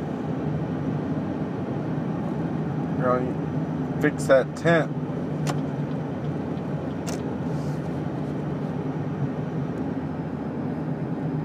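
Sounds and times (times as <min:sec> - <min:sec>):
car air conditioning system whooshing hum: 0:00.0 - 0:11.4
road rumble: 0:00.0 - 0:11.4
speech: 0:03.0 - 0:05.6.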